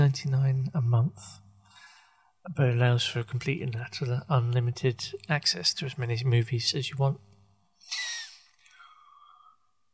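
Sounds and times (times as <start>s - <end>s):
speech: 0.1s - 1.4s, 2.4s - 7.3s
person yawning with a drawn-out tonal groan: 7.9s - 8.9s.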